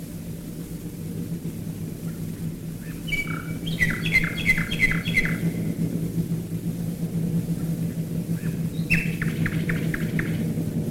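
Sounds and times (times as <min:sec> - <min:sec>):
loud continuous low rumble of bomber engines overhead: 0:00.0 - 0:10.8
common nightingale singing down-slurred notes: 0:02.8 - 0:05.6, 0:08.4 - 0:10.4.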